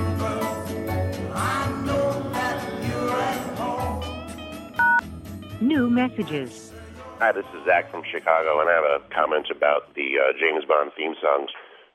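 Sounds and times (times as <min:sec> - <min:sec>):
dense steady music: 0:00.0 - 0:11.0
sharp telephone keypad tone: 0:04.8 - 0:05.0
speech: 0:05.9 - 0:11.6.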